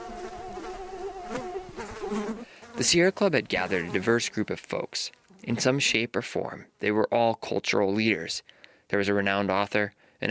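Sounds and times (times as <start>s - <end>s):
mosquitoes buzzing in a mountain valley: 0.0s - 3.0s
speech: 2.8s - 10.2s.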